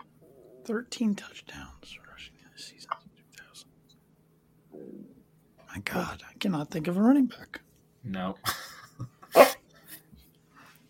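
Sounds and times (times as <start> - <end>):
speech: 0.7 - 3.1, 5.7 - 8.7
dog barking: 9.3 - 9.6.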